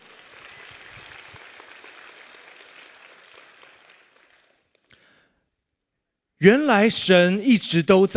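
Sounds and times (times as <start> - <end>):
crowd clapping hands in praise: 0.0 - 5.3
speech: 6.4 - 8.1.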